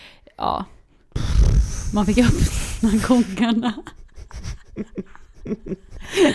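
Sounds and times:
speech: 0.4s - 0.8s, 1.9s - 4.0s, 4.8s - 6.3s
voice imitating a slow hissing fart: 1.2s - 3.2s
laughter: 4.1s - 6.3s.

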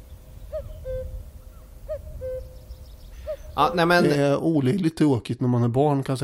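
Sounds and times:
cuckoo calling two-note call: 0.0s - 4.2s
speech: 3.6s - 6.2s.

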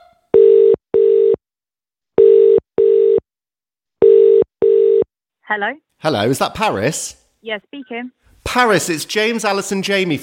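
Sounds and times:
double-ring telephone ringing tone on a call being dialled: 0.4s - 1.4s, 2.2s - 3.2s, 4.0s - 5.1s
speech: 5.5s - 10.2s.

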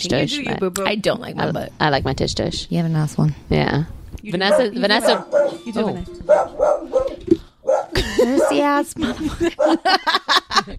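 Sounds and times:
speech: 0.0s - 10.7s
dogs barking: 4.4s - 8.8s, 9.5s - 10.0s
laughter: 7.9s - 10.7s.

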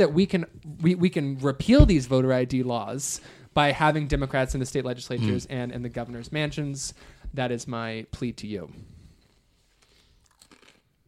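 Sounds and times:
speech: 0.0s - 8.9s
loud chewing and crunching food with sharp bites: 9.8s - 10.9s.

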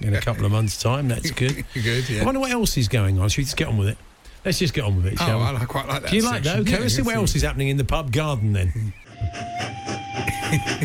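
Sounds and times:
speech: 0.0s - 9.7s, 10.5s - 10.8s
laughter: 1.2s - 2.2s, 9.1s - 10.8s
miniature garden train whistle in a pub garden: 9.2s - 10.8s.

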